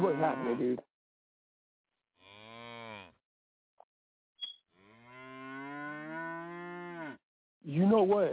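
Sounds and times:
cows mooing in a cow stable: 0.0s - 0.7s, 2.2s - 3.1s, 4.8s - 7.2s
speech: 0.0s - 0.9s, 7.6s - 8.3s.

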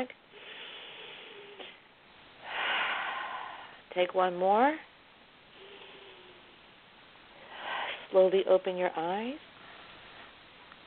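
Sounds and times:
speech: 0.0s - 0.2s, 4.0s - 4.9s, 8.1s - 9.5s
deep breath in and out during a guided relaxation exercise: 0.3s - 1.8s, 2.4s - 3.9s, 5.5s - 6.7s, 7.3s - 8.2s.

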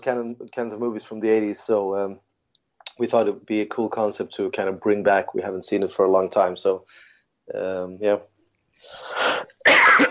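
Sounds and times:
speech: 0.0s - 2.3s, 3.0s - 9.8s
harsh breathy coughs: 8.9s - 10.0s.

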